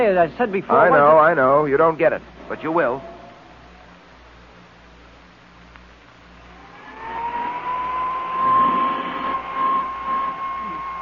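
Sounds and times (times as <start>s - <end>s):
speech: 0.0s - 3.1s
small hand vacuum cleaner running over a coat: 6.5s - 10.9s.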